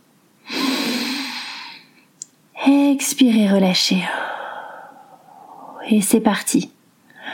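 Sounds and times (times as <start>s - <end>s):
long deep inhale: 0.5s - 2.0s, 4.1s - 5.8s
speech: 2.6s - 4.3s, 5.9s - 6.8s.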